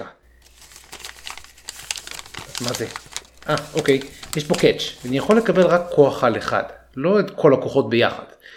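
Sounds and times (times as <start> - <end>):
paper crinkling and rustling as a package is torn open: 0.4 - 6.7
speech: 2.6 - 8.5.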